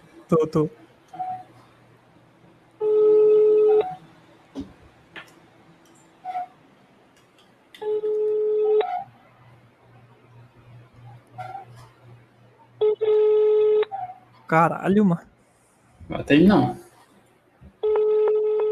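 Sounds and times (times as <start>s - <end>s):
faint hum: 0.0s - 18.6s
speech: 0.3s - 0.8s, 14.5s - 15.3s, 16.1s - 16.8s
phone ringback tone over speakerphone: 2.8s - 4.0s, 7.8s - 9.1s, 12.8s - 13.9s, 17.8s - 18.6s.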